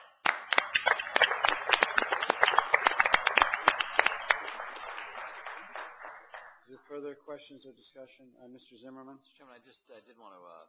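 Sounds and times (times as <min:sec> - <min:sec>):
meeting attendees applauding: 0:00.0 - 0:06.8
speech: 0:06.9 - 0:10.6.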